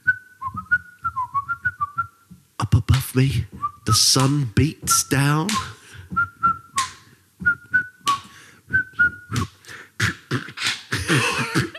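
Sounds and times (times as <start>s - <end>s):
person whistling a jaunty tune: 0.0s - 2.2s, 3.5s - 4.2s, 4.8s - 9.7s
soft low thumps: 0.4s - 6.8s, 7.4s - 7.9s
speech: 3.1s - 5.7s
laughter: 11.0s - 11.7s.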